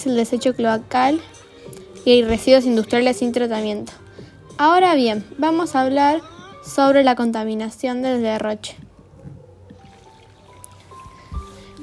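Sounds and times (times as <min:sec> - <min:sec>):
speech: 0:00.0 - 0:01.4, 0:02.0 - 0:04.0, 0:04.6 - 0:08.8
water dripping from a faucet: 0:09.7 - 0:11.3
faint water trickle: 0:09.7 - 0:11.8.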